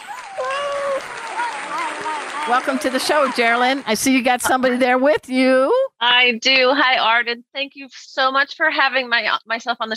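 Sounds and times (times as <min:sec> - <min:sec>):
whistles or cheers: 0:00.0 - 0:02.5
applause: 0:00.0 - 0:04.3
speech: 0:02.5 - 0:09.9.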